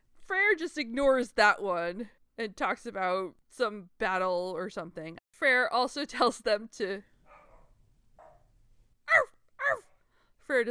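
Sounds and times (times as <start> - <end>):
speech: 0.5 - 7.1, 10.5 - 10.6
person imitating a dog barking: 9.1 - 10.0.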